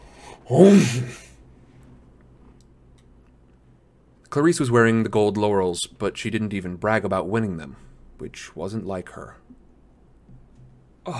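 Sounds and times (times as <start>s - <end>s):
speech: 0.5s - 1.2s, 4.4s - 9.5s
sneeze acted out by a voice: 0.5s - 1.3s.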